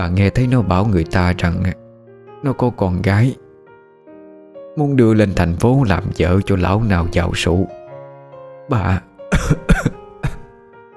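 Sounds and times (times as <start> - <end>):
speech: 0.0 - 1.8, 2.4 - 3.4, 4.8 - 7.8, 8.7 - 9.9
old woman coughing violently: 9.3 - 10.5.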